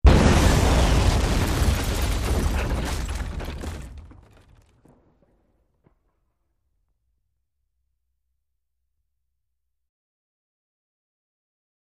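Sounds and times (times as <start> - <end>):
explosion: 0.0 - 5.0
wood debris falling: 0.0 - 5.5.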